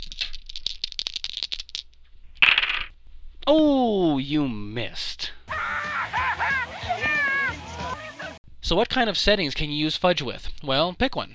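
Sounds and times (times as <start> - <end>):
dice rolling on a table: 0.0 - 2.9
speech: 3.5 - 5.2, 8.7 - 11.3
laughter: 5.5 - 8.4.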